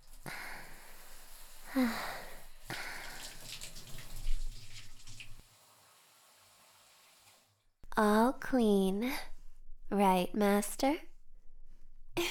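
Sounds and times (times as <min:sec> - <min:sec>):
water pouring and splashing as a person is rinsed off while bathing: 0:00.0 - 0:07.6
speech: 0:01.8 - 0:02.1, 0:08.0 - 0:09.3, 0:09.9 - 0:11.1.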